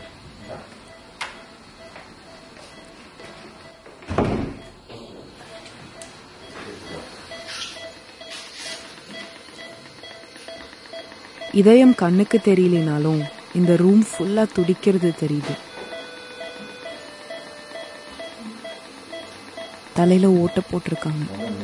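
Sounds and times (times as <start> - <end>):
wooden door thudding shut: 4.0 - 4.6
speech: 11.6 - 15.7, 20.0 - 21.6.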